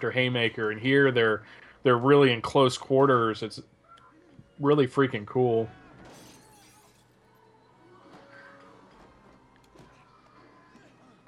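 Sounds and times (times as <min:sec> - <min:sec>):
speech: 0:00.0 - 0:03.8, 0:04.6 - 0:05.8
glass shattering in a film fight scene: 0:06.0 - 0:07.2.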